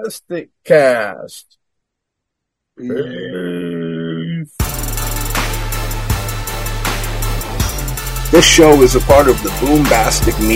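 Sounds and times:
speech: 0:00.0 - 0:01.6, 0:02.8 - 0:03.8, 0:08.3 - 0:10.5
long low gravelly burp: 0:02.8 - 0:04.6
music with a steady bass line and beat: 0:04.6 - 0:10.5.

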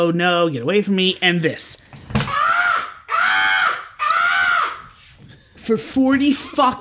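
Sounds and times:
speech: 0:00.0 - 0:02.0, 0:05.6 - 0:06.7
voice imitating a woman screaming in the dark: 0:02.3 - 0:04.9.

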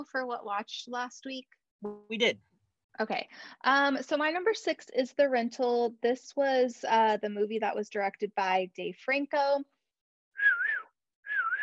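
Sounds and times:
speech: 0:00.0 - 0:09.7
person whistling: 0:10.4 - 0:11.6.

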